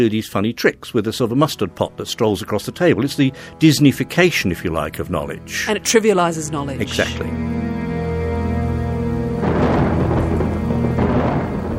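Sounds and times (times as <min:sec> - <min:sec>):
speech: 0:00.0 - 0:07.6
sustained droning musical tone: 0:01.4 - 0:11.7
steady wash of heavy rain: 0:07.8 - 0:11.7
loud crash of thunder: 0:09.2 - 0:11.7.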